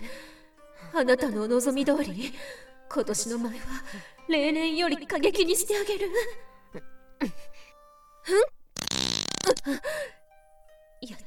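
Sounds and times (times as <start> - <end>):
speech: 0.9 - 7.4, 8.2 - 10.2, 11.0 - 11.2
loud raspy fart from a woman: 8.8 - 9.7.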